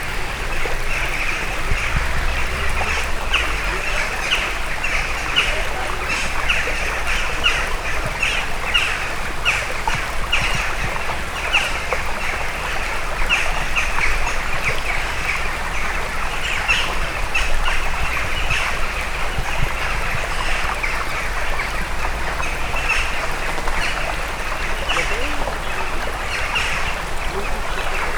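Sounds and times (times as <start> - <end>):
jackdaws calling: 0.0 - 6.5
stream flowing: 0.0 - 28.1.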